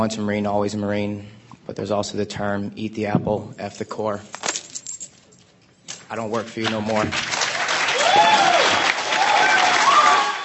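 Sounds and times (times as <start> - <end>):
speech: 0.0 - 4.5, 6.1 - 7.3
large crowd applauding: 6.9 - 10.4
large crowd cheering with whoops and shouts: 7.7 - 10.4.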